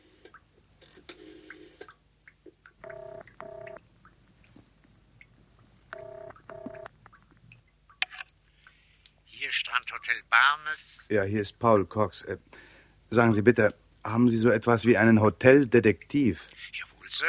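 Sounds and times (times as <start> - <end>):
touch-tone telephone dialing in a hotel: 2.8 - 3.8, 6.0 - 6.9
speech: 10.1 - 12.5, 13.1 - 17.2.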